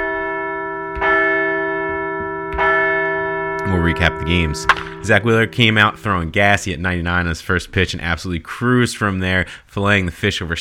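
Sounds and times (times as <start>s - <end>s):
large bell struck and ringing: 0.0s - 7.4s
speech: 3.6s - 10.5s.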